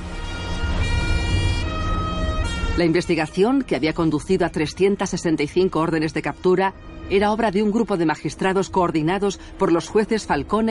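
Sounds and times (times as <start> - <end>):
police car sirens wailing through the streets of Palermo: 0.0 - 5.2
low rumble of street traffic: 0.0 - 10.6
speech: 2.8 - 10.6.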